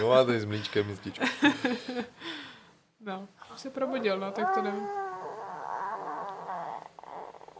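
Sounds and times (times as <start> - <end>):
speech: 0.0 - 5.1
puppy whining: 3.9 - 7.5.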